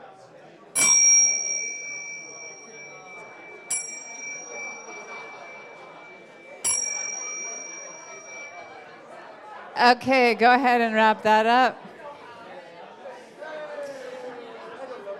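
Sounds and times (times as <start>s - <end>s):
low murmur of voices: 0.0s - 15.1s
bright bell ringing: 0.8s - 9.0s
speech: 9.8s - 11.8s.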